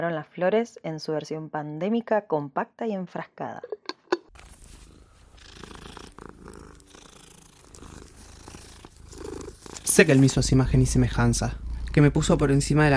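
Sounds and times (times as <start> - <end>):
speech: 0.0 - 4.0, 10.0 - 12.9
cat purring: 4.4 - 12.9.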